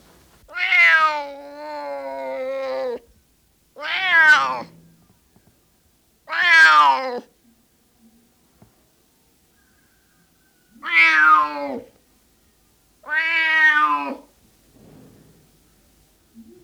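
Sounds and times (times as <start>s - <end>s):
male tomcat meowing: 0.5s - 3.0s, 3.8s - 4.7s, 6.3s - 7.2s, 10.8s - 11.9s, 13.0s - 14.3s.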